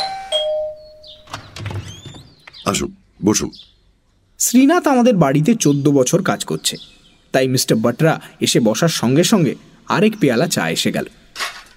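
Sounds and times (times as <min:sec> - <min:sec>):
two-note doorbell chime: 0:00.0 - 0:01.3
speech: 0:02.7 - 0:03.8, 0:04.4 - 0:11.6.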